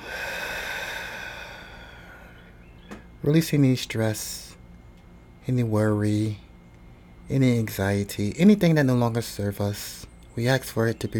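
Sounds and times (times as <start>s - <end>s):
deep breath in and long breath out: 0.0s - 2.5s
speech: 3.2s - 4.5s, 5.5s - 6.4s, 7.3s - 11.1s.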